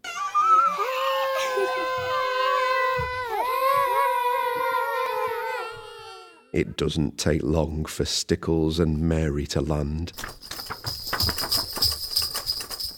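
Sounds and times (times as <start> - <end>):
long howling yelp calling for friends: 0.0 - 6.4
speech: 6.6 - 10.5.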